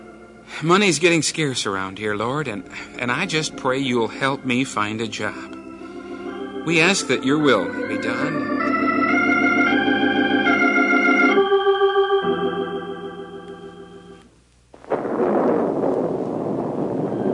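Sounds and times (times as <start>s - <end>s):
sustained musical chords: 0.0s - 14.3s
speech: 0.6s - 5.6s, 6.6s - 9.0s
loud crash of thunder: 14.7s - 17.3s
steady dense roar of heavy rain: 14.7s - 17.3s.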